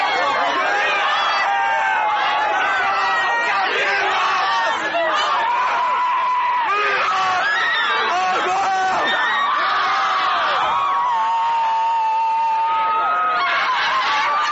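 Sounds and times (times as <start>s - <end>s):
crowd chanting a high school cheer in unison: 0.0s - 10.8s
crowd shouting and whooping: 0.0s - 14.5s.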